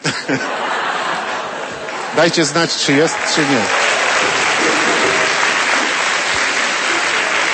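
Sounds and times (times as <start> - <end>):
laughter: 0.0 - 7.5
speech: 0.3 - 0.8, 2.1 - 3.9
audience applauding: 0.8 - 7.5.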